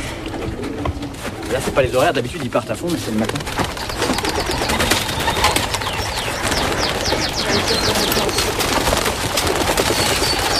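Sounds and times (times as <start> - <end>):
flock of pigeons flapping wings taking flight: 0.3 - 10.5
speech: 1.5 - 3.8
small birds chirping: 1.5 - 10.5.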